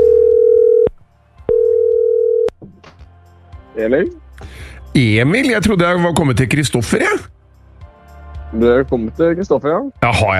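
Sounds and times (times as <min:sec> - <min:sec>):
ringback tones on a phone line during an outgoing call: 0:00.0 - 0:00.9, 0:01.5 - 0:02.5
speech: 0:03.8 - 0:07.4, 0:08.5 - 0:10.3.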